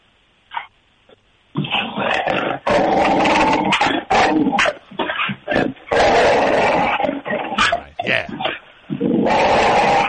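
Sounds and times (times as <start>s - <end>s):
dogs barking and growling over a speakerphone line: 1.6s - 8.6s, 9.2s - 10.0s.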